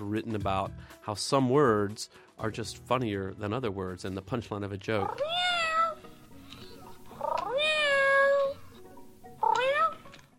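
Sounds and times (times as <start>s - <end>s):
speech: 0.1s - 5.6s
cat meowing: 5.0s - 6.0s, 7.1s - 8.6s, 9.4s - 10.1s.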